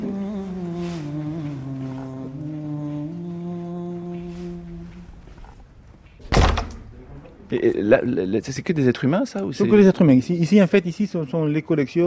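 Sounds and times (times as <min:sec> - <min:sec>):
heavy door creaking open: 0:05.1 - 0:07.4
heavy door shutting with a deep thud: 0:06.2 - 0:07.0
speech: 0:07.5 - 0:12.0.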